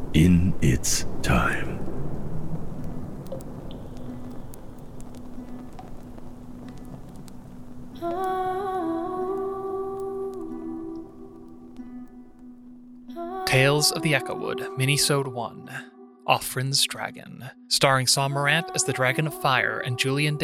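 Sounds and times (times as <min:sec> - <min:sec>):
steady rain hissing in a stormy ambience: 0:00.0 - 0:15.1
low constant drone: 0:00.0 - 0:15.4
speech: 0:00.2 - 0:01.7, 0:13.6 - 0:20.4.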